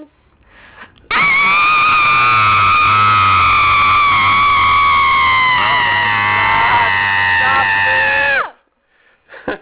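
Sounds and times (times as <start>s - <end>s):
people screaming: 1.1s - 8.5s.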